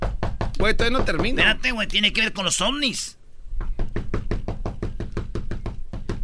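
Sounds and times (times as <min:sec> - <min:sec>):
firm knocking on a door: 0:00.0 - 0:01.5, 0:03.6 - 0:06.2
speech: 0:00.6 - 0:03.2.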